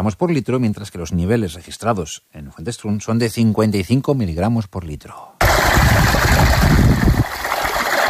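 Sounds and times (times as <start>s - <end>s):
speech: 0.0s - 7.0s
water trickling and splashing while filling for drinking: 5.4s - 8.0s.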